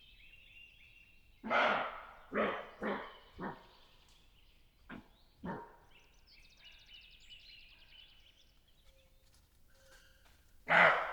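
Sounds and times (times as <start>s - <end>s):
roe deer barking: 1.4s - 3.7s, 4.9s - 5.8s, 10.7s - 11.1s.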